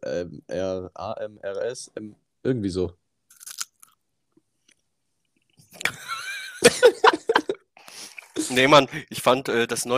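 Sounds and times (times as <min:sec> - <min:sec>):
speech: 0:00.2 - 0:03.0, 0:06.6 - 0:07.2, 0:08.5 - 0:09.9
biting into a pear: 0:03.3 - 0:04.0
laughter: 0:05.8 - 0:07.6.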